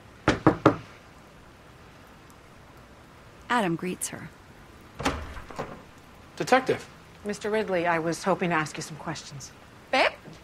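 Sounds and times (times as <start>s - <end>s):
light rain falling: 0.0s - 10.4s
woman knocking firmly on the front door of a house: 0.2s - 0.8s
speech: 3.5s - 4.4s, 6.4s - 10.0s.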